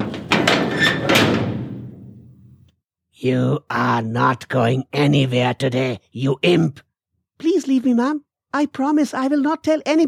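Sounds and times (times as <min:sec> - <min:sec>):
door pushed shut with a heavy thud: 0:00.0 - 0:02.6
speech: 0:03.2 - 0:10.0.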